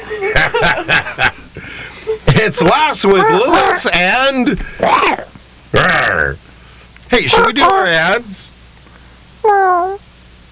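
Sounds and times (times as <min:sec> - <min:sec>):
laughter: 0:00.0 - 0:04.0
speech: 0:00.1 - 0:01.4, 0:02.4 - 0:06.0, 0:07.2 - 0:08.5
person imitating a cat meow: 0:09.4 - 0:10.0.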